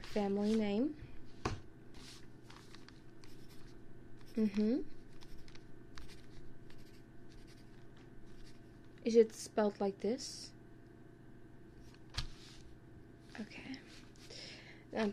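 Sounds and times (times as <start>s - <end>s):
speech: 0.2s - 1.1s, 4.4s - 5.0s, 9.0s - 10.5s, 13.4s - 13.8s, 14.9s - 15.1s
pen scratching on paper: 3.2s - 7.6s.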